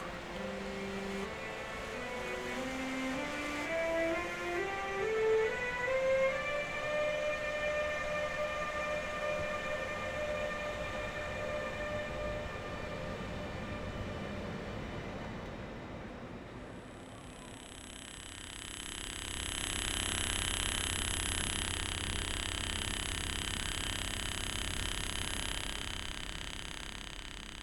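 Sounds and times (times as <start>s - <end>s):
steady rail rumble inside a moving train: 0.0s - 17.5s
thin electrical interference whine from a train loudspeaker: 0.0s - 27.6s.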